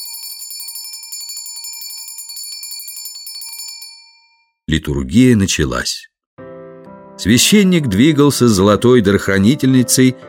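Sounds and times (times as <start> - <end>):
small bell ringing at a church liturgy: 0.0 - 4.6
speech: 4.7 - 6.1, 7.2 - 10.2.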